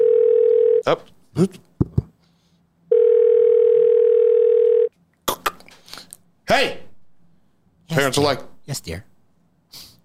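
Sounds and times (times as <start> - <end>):
loud steady telephone dial tone: 0.0 - 0.8, 2.9 - 4.9
speech: 0.8 - 1.7, 6.5 - 6.8, 8.0 - 9.1.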